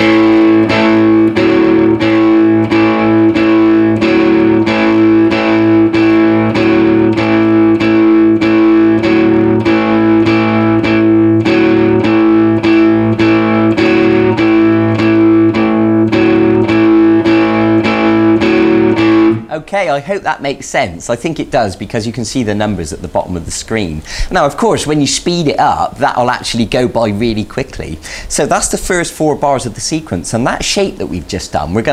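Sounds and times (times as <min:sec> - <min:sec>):
distorted electric guitar playing repeated notes: 0:00.0 - 0:19.7
speech: 0:20.0 - 0:31.9.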